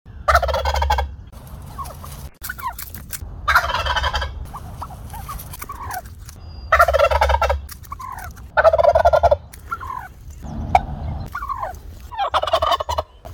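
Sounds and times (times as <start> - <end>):
wild turkey calls in the USA: 0.2 - 1.1, 3.5 - 6.0, 6.7 - 13.3.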